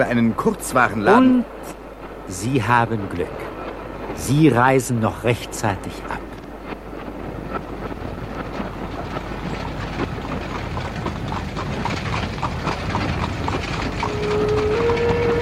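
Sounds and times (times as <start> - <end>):
speech: 0.0 - 3.6, 4.2 - 6.3
wind noise: 0.0 - 15.4
carriage wheels rumbling: 2.0 - 15.4
horse hooves clip-clopping at a trot pulling a carriage: 6.3 - 15.4.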